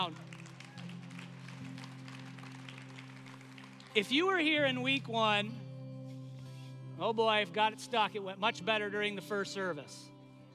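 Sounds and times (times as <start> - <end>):
speech: 0.0 - 0.3, 4.0 - 5.6, 7.0 - 10.1
audience clapping: 0.0 - 4.3.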